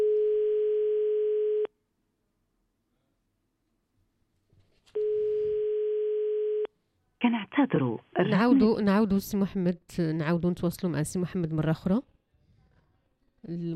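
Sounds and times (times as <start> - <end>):
telephone ringback tone on a call to a mobile number: 0.0 - 1.7, 5.0 - 6.7
speech: 7.3 - 12.1, 13.4 - 13.7.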